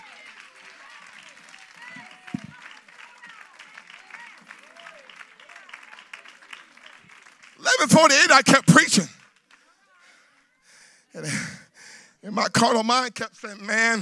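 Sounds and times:
audience applause in praise: 0.0 - 10.3
speech: 7.8 - 9.2, 12.4 - 14.0.

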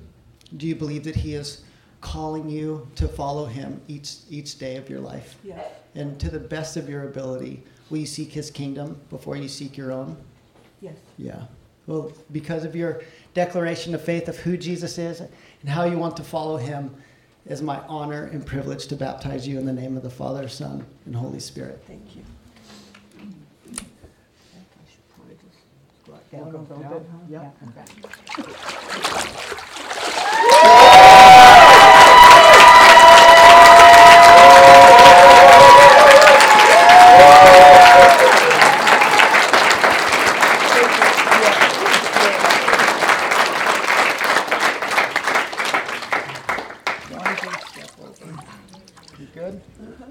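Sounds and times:
speech: 0.5 - 22.4, 26.3 - 29.6
large crowd applauding: 28.9 - 47.9
crowd whooping and cheering: 30.1 - 40.0.

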